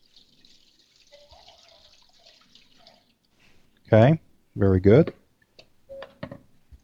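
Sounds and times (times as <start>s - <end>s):
salt brine pouring from a bowl over a turkey breast: 0.0s - 3.4s
speech: 3.9s - 5.2s.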